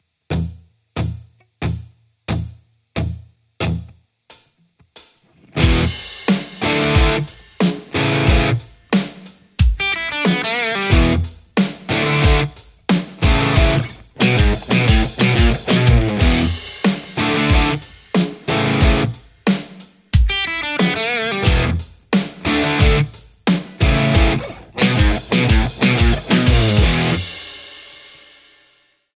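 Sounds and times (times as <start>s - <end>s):
Strat hybrit electric guitar: 0.3s - 4.0s, 5.3s - 8.7s, 9.8s - 19.2s, 20.2s - 27.3s.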